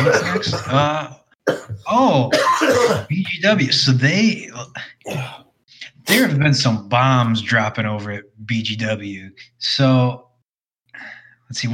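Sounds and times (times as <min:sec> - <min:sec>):
person coughing: 0:00.0 - 0:03.2, 0:05.0 - 0:05.5, 0:06.1 - 0:06.4
speech: 0:00.0 - 0:10.2, 0:11.0 - 0:11.7
throat clearing: 0:01.5 - 0:03.1, 0:05.0 - 0:05.5.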